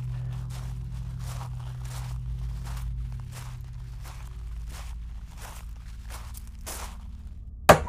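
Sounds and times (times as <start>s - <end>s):
footsteps on a gravel path to a front door: 0.0s - 7.8s
low hum: 0.0s - 7.8s.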